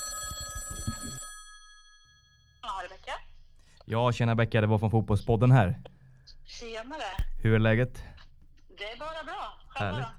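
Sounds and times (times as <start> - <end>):
telephone ringing tone on an outgoing call: 0.0 - 2.5
speech: 3.9 - 5.9, 6.5 - 8.2, 9.8 - 10.1.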